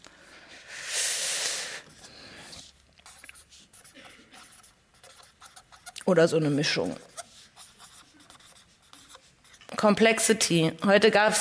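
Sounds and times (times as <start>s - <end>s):
pen scratching across a surface: 1.9s - 9.8s
speech: 6.1s - 7.1s, 9.8s - 11.3s.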